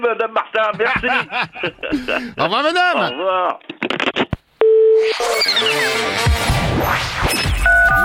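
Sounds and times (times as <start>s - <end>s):
speech: 0.0s - 3.7s, 5.0s - 7.5s
laughter: 0.5s - 2.4s
crashing swooshing sound effects: 5.7s - 8.0s
telephone line tone after call not hung up: 7.7s - 8.0s.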